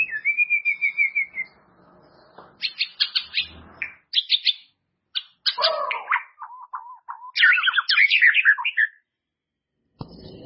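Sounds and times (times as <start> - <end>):
white-rumped shama singing varied rich whistled phrases: 0.0 - 1.6, 2.6 - 9.0.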